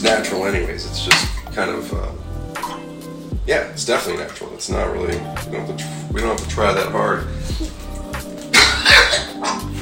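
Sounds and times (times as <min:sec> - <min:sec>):
speech: 0:00.1 - 0:02.4, 0:03.4 - 0:07.8
short rough hacking coughs: 0:08.5 - 0:09.7.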